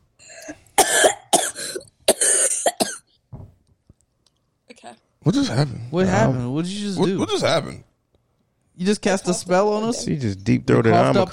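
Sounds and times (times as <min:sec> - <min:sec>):
person having a harsh coughing fit: 0:00.3 - 0:03.1
speech: 0:05.2 - 0:07.9, 0:08.8 - 0:11.3.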